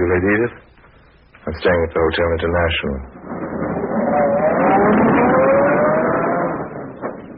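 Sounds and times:
speech: 0.1s - 0.7s, 1.4s - 3.4s, 4.8s - 5.1s
luxurious limousine engine humming and pulling away: 3.2s - 7.3s.

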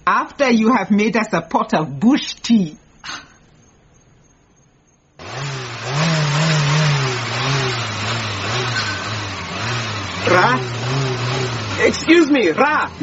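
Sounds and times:
speech: 0.1s - 3.3s, 10.3s - 10.8s, 11.8s - 13.0s
car engine starting, revving and running: 5.2s - 13.0s.

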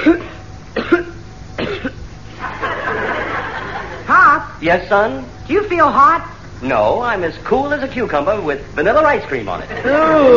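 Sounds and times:
speech: 0.0s - 0.3s, 4.6s - 10.3s
person coughing: 0.0s - 2.0s
laughter: 2.3s - 4.1s, 9.6s - 10.3s.

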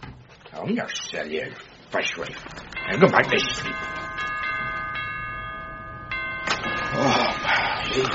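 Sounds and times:
rustling noise: 0.0s - 4.9s
speech: 0.6s - 4.0s, 8.0s - 8.1s
doorbell at a front door ringing: 2.7s - 8.1s.

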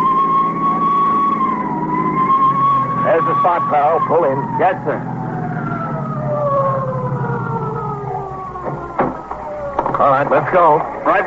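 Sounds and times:
approaching ambulance or emergency services car siren wailing: 0.0s - 11.2s
low emergency vehicle engine rumble: 0.0s - 11.2s
speech: 3.2s - 5.1s, 10.0s - 11.2s
brief sharp knocks: 8.6s - 10.0s.

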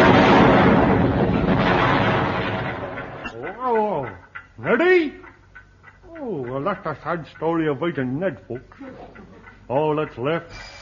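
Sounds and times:
loud explosive roar of a barrel of saxophones blowing up: 0.0s - 3.3s
speech: 6.7s - 10.8s.

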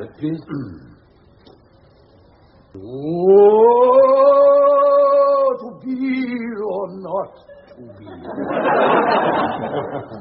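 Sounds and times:
speech: 0.0s - 1.0s, 2.8s - 4.0s, 6.8s - 10.1s
man imitating a roar: 2.8s - 5.6s
laughter: 7.5s - 10.1s.

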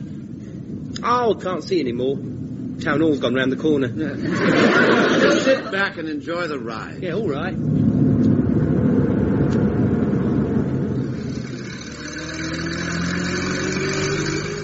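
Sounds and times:
road rumble: 0.0s - 14.6s
speech: 1.0s - 8.4s
laughter: 4.2s - 6.0s
old van engine accelerating: 7.6s - 14.6s.

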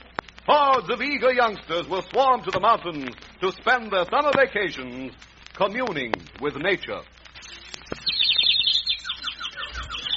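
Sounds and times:
speech: 0.5s - 7.2s
small bird chirping in a tree: 7.4s - 10.1s.

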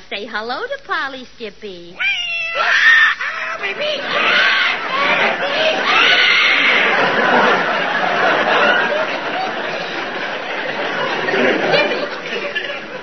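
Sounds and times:
speech: 0.1s - 2.8s, 3.6s - 7.7s
cat caterwauling: 2.0s - 3.6s
laughter: 2.6s - 13.0s.

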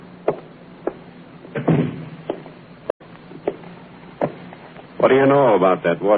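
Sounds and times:
door being shut with a muffled thud: 1.5s - 2.5s
speech: 5.0s - 6.1s.

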